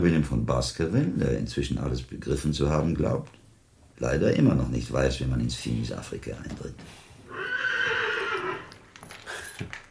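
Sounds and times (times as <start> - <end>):
speech: 0.0 - 3.4, 4.0 - 7.0
horse neighing: 7.3 - 8.8.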